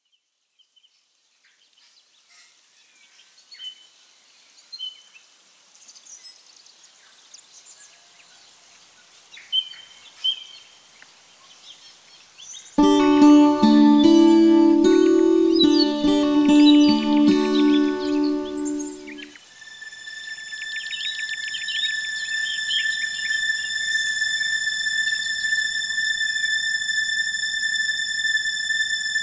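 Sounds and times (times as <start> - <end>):
ambient strings: 12.8 - 29.2.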